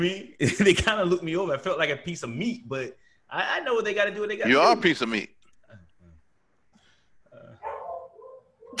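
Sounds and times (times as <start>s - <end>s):
speech: 0.0s - 5.8s
dog barking: 7.6s - 8.7s.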